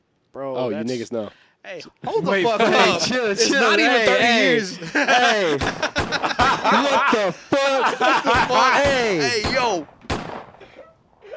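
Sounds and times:
noise: 0.0s - 11.3s
speech: 0.4s - 10.0s
laughter: 2.0s - 9.8s
gunshot-like bangs: 8.8s - 10.7s.

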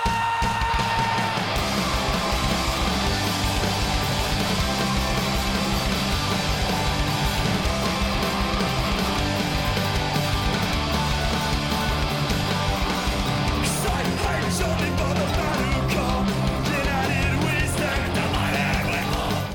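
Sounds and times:
rough shouted vocals: 0.0s - 3.7s, 13.5s - 19.5s
loud chaotic live rock band with crashing guitars and drums: 0.0s - 19.5s.

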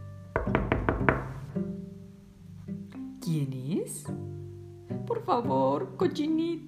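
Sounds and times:
knocking on a wooden house door: 0.4s - 1.6s
speech: 3.3s - 6.6s.

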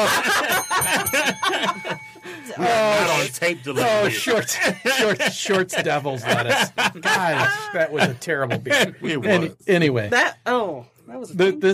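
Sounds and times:
people laughing and snickering: 0.0s - 9.4s
small bell ringing: 0.3s - 4.0s
speech: 2.6s - 11.7s.

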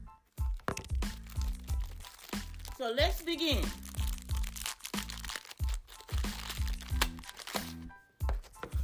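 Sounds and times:
crisp crackers being chewed: 0.5s - 2.8s, 3.8s - 7.8s
cracker package being opened, plastic wrapping crinkling and rustling: 0.5s - 7.8s
speech: 2.8s - 3.8s.

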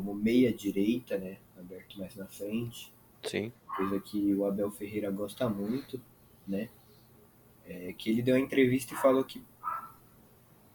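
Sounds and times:
speech: 0.0s - 6.8s, 7.7s - 9.5s
faint dog bark: 3.7s - 4.2s, 8.9s - 10.0s.

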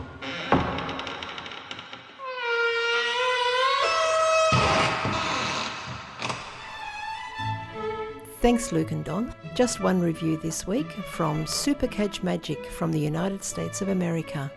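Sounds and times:
door opening with a clunk and creaking squeal: 0.0s - 7.4s
speech: 8.4s - 14.5s.

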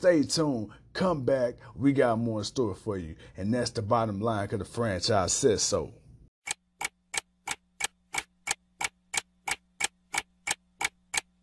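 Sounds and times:
speech: 0.0s - 6.0s
clock ticking: 6.4s - 11.4s.

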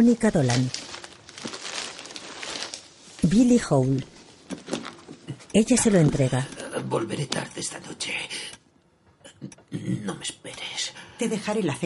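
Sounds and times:
speech: 0.0s - 0.8s, 3.2s - 4.1s, 5.5s - 8.6s, 9.7s - 11.8s
paper crinkling and rustling as a shirt is wrapped in it: 0.0s - 5.2s.

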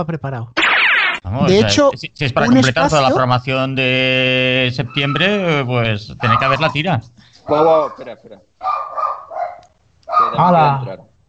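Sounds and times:
speech: 0.0s - 0.6s, 1.2s - 8.9s, 10.3s - 11.1s
dog barking: 6.2s - 6.8s, 7.7s - 10.5s.

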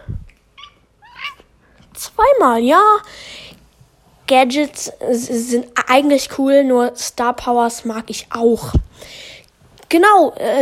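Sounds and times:
cat meowing: 0.6s - 1.5s
speech: 2.1s - 3.4s, 4.3s - 9.2s, 9.9s - 10.5s.

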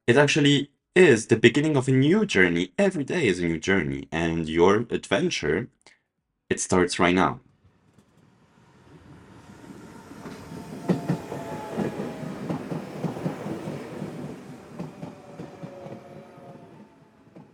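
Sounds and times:
speech: 0.1s - 5.8s, 6.5s - 7.5s
train carriages jostling with clickety-clack and low rumble: 10.2s - 17.5s.

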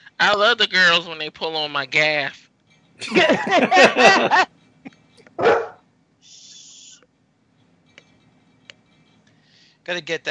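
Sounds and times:
speech: 0.2s - 2.4s, 3.0s - 4.6s, 5.4s - 5.7s, 9.9s - 10.3s
laughter: 3.0s - 4.5s
dog barking: 5.4s - 5.8s.

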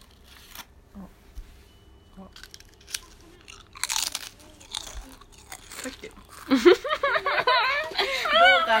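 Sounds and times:
crisp crunching of someone chewing food: 2.2s - 6.8s
laughter: 5.8s - 8.7s.

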